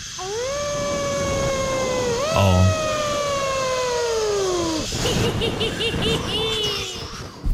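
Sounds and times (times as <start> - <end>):
eerie wavering howl ghost sound effect: 0.1 - 4.9
speech: 5.3 - 6.8.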